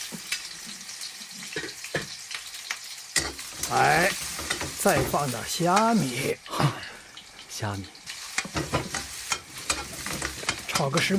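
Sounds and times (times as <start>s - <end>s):
scallions and ginger stir-frying in hot oil in a wok: 0.0s - 11.1s
short scraping stirring strokes in a wok: 3.2s - 5.0s, 8.1s - 10.9s
speech: 3.7s - 4.2s, 4.8s - 6.7s, 7.6s - 9.0s, 10.8s - 11.1s.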